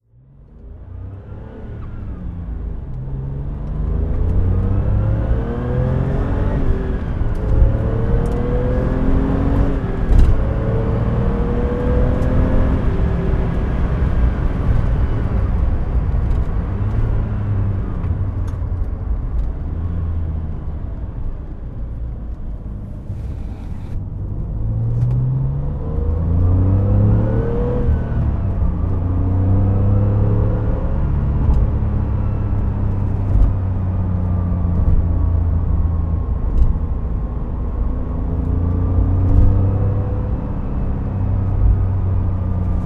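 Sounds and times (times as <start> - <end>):
Porsche 911 993 Turbo driving: 0.0 - 42.8.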